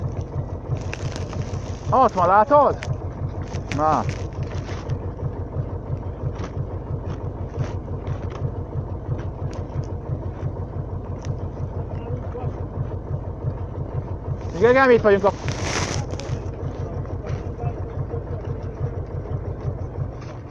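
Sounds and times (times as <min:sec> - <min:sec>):
tractor engine rumbling: 0:00.0 - 0:20.4
speech: 0:01.9 - 0:02.9, 0:03.7 - 0:04.3, 0:14.6 - 0:15.5.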